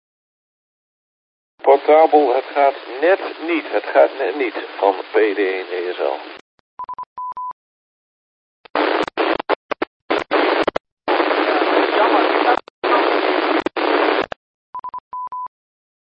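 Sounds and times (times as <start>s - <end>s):
harsh hissy radio static: 1.7s - 6.4s, 8.7s - 14.4s
speech: 1.9s - 6.4s.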